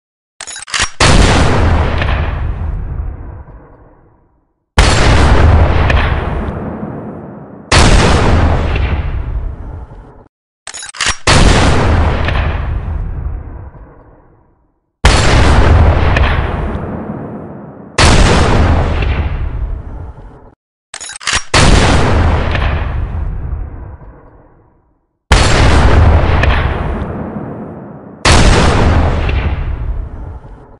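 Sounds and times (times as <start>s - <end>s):
Barrett M99 rifle gunshot: 1.0s - 2.8s, 4.8s - 9.4s, 11.2s - 13.3s, 15.0s - 19.5s, 21.5s - 23.5s, 25.3s - 30.1s.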